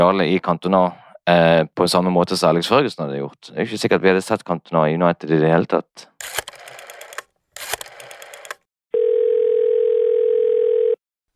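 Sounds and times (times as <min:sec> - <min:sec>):
speech: 0:00.0 - 0:06.5
rattling telephone bell ringing: 0:08.9 - 0:11.0.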